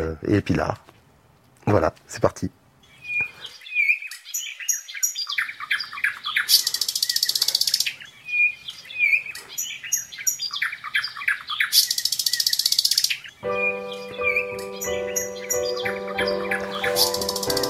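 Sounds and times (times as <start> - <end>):
speech: 0.1 - 0.9, 1.7 - 2.6
dense chorus of birdsong: 2.8 - 17.6
sustained harmonic tones: 13.4 - 17.6.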